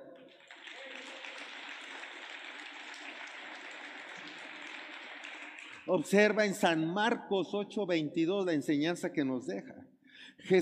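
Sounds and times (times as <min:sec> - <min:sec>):
crowd applauding: 0:00.0 - 0:06.4
speech: 0:05.9 - 0:09.8, 0:10.4 - 0:10.5.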